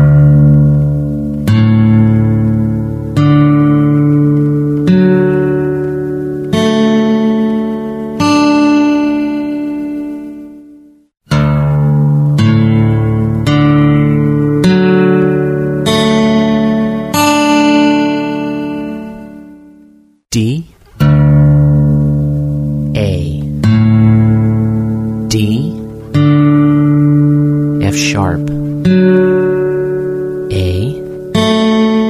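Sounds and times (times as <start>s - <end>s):
guitar strings in open D tuning plucked from lowest to highest: 0.0s - 32.0s.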